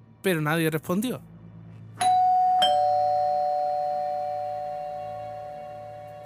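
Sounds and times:
speech: 0.2 - 1.3
two-tone doorbell chiming ding dong: 2.0 - 6.2.

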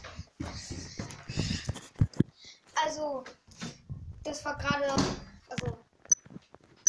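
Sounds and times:
dull thudding footsteps climbing a staircase: 0.0 - 2.2
speech: 2.9 - 3.4, 4.2 - 5.7.

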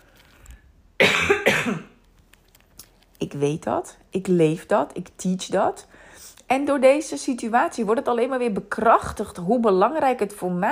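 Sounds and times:
coughing: 1.0 - 2.0
speech: 3.4 - 10.7
faint breathing: 5.8 - 6.4.

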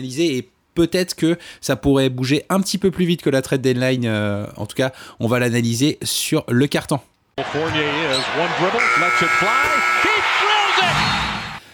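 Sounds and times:
speech: 0.0 - 11.2
arena crowd cheering: 7.4 - 11.6
basketball buzzer blaring: 8.8 - 11.6.

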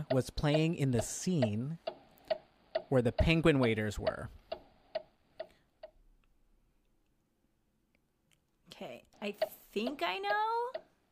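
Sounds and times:
speech: 0.0 - 1.9, 2.9 - 4.4, 8.9 - 10.9
countdown timer ticking during a quiz question: 0.0 - 6.1, 9.2 - 11.1.

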